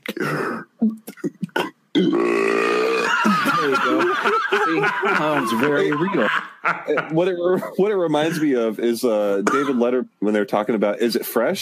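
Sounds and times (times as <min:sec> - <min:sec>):
loud resonant burp: 0:00.0 - 0:03.7
laughter: 0:03.1 - 0:08.5
speech: 0:04.7 - 0:11.6.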